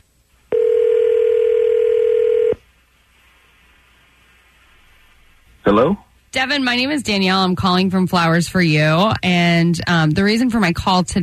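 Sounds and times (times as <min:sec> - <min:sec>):
telephone dial tone: 0:00.5 - 0:02.6
speech: 0:05.7 - 0:11.2.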